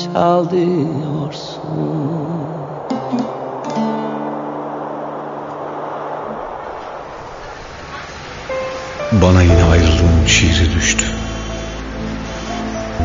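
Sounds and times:
speech: 0:00.2 - 0:02.4, 0:09.1 - 0:11.2
idling vehicle engines humming at a bus terminal: 0:10.1 - 0:13.0.

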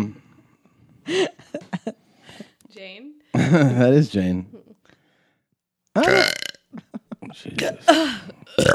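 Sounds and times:
speech: 0:01.1 - 0:01.3, 0:03.5 - 0:04.6
laughter: 0:01.1 - 0:02.0, 0:06.7 - 0:08.5
loud drawn-out burp: 0:06.0 - 0:06.7, 0:08.5 - 0:08.7.

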